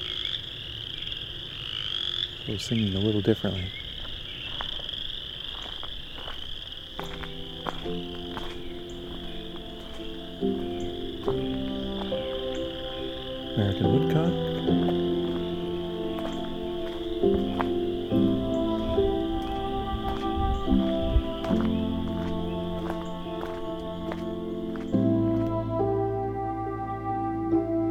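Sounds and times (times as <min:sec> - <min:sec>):
dense chorus of frogs croaking and trilling: 0:00.0 - 0:27.2
speech: 0:02.5 - 0:03.8
steady high insect-like trill: 0:02.8 - 0:25.3.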